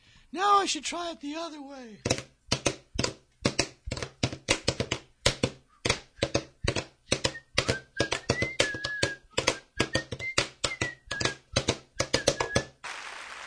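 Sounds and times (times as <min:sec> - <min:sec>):
speech: 0:00.3 - 0:02.2
drumsticks tapping on a drum practice pad: 0:02.1 - 0:12.7.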